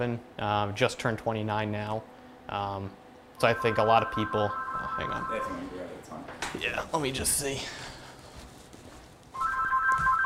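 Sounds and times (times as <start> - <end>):
speech: 0.0 - 8.0
telephone ringing with electronic two-tone trill: 3.4 - 5.8, 9.4 - 10.2.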